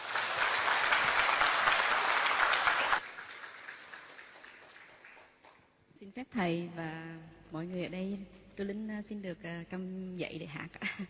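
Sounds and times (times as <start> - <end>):
crowd applauding: 0.0 - 5.6
speech: 6.1 - 11.0.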